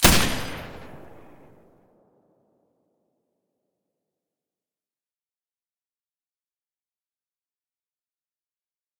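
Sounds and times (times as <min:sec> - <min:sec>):
M249 machine gun firing with a silencer: 0:00.0 - 0:01.6.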